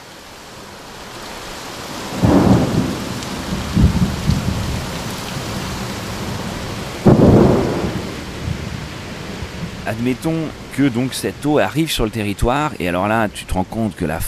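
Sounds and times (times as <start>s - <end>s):
rain hissing: 0.0s - 14.2s
thunder rumbling: 1.9s - 12.8s
speech: 9.9s - 14.2s.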